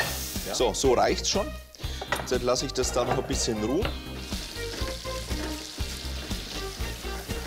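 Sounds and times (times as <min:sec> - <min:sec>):
butter browning and sizzling in a hot frying pan: 0:00.0 - 0:00.9, 0:03.7 - 0:07.4
speech: 0:00.5 - 0:01.7, 0:02.3 - 0:04.1.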